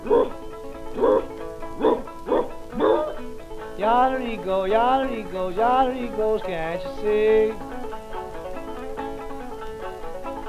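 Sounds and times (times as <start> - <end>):
man imitating an old dog barking: 0.0 - 0.4, 1.0 - 3.3
speech: 3.9 - 7.7.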